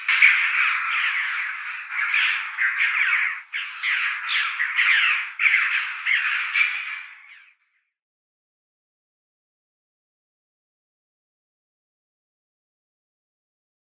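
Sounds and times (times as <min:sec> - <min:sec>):
choughs calling in rasping squawks: 0:00.0 - 0:07.4.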